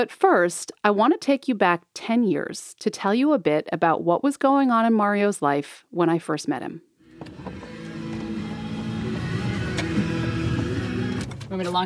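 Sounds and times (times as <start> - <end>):
speech: 0.0 - 7.6, 11.6 - 11.8
car engine low steady hum: 7.0 - 11.8.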